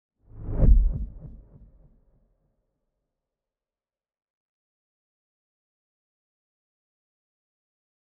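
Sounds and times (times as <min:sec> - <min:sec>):
pointer whoosh: 0:00.3 - 0:01.4.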